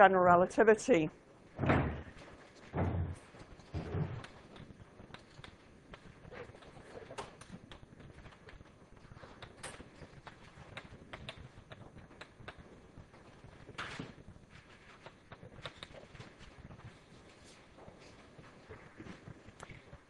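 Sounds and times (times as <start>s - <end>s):
speech: 0.0s - 1.8s
door banging shut with heavy thuds: 1.6s - 3.2s.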